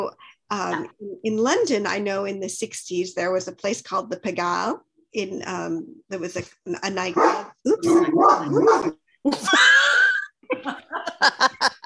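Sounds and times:
speech: 0:00.0 - 0:11.8
dog barking and whining: 0:07.2 - 0:09.0
laughter: 0:09.3 - 0:11.8.

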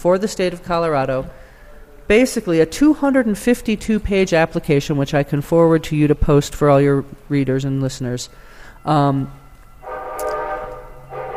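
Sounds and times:
speech: 0:00.0 - 0:01.4, 0:02.1 - 0:09.4
train brakes screeching as the train slows to a stop: 0:08.3 - 0:11.3
train horn blast: 0:09.3 - 0:11.3.

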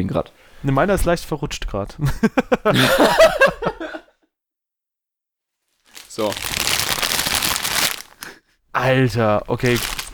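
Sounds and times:
speech: 0:00.0 - 0:04.0, 0:06.2 - 0:06.9, 0:08.8 - 0:10.1
laughter: 0:02.0 - 0:04.1
chip bag crinkling: 0:05.7 - 0:08.3, 0:09.3 - 0:10.1.

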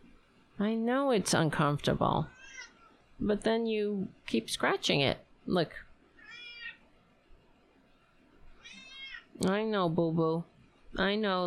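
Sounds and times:
speech: 0:00.6 - 0:02.4, 0:03.2 - 0:05.8, 0:09.4 - 0:11.4
unhappy male pet cat meowing in complaint: 0:06.2 - 0:06.8, 0:08.6 - 0:09.3.

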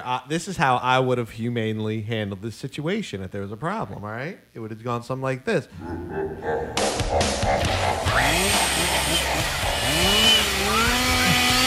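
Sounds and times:
speech: 0:00.0 - 0:11.1
chainsaw revving: 0:07.9 - 0:11.6.

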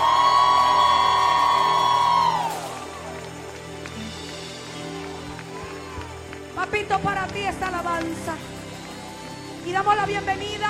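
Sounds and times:
large church audience shouting and cheering in praise: 0:00.0 - 0:06.6, 0:08.4 - 0:10.1
speech: 0:06.7 - 0:08.6, 0:09.7 - 0:10.6.

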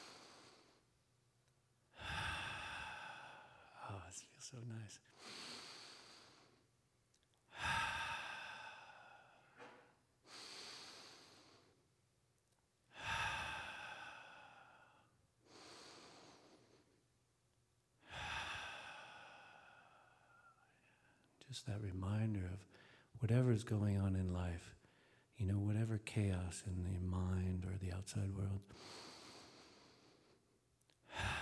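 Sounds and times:
slow deep breathing done together: 0:00.0 - 0:01.0, 0:01.9 - 0:06.8, 0:07.5 - 0:11.9, 0:12.9 - 0:17.0, 0:18.0 - 0:21.4, 0:22.6 - 0:23.2, 0:24.8 - 0:25.3, 0:28.6 - 0:31.4
speech: 0:04.0 - 0:05.7, 0:21.5 - 0:24.8, 0:25.4 - 0:29.1.

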